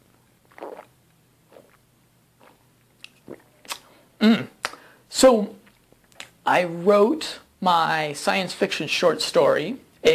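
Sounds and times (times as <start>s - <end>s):
person sipping a drink: 0.4s - 1.8s, 2.4s - 3.9s
gulp: 0.5s - 0.9s, 2.4s - 4.8s
speech: 4.2s - 4.5s, 5.2s - 5.6s, 6.5s - 10.1s.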